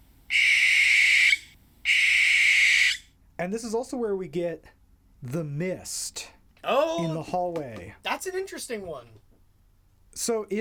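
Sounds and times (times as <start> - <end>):
barn owl giving harsh hissing screams: 0.3 - 3.1
speech: 3.4 - 9.3, 10.2 - 10.5.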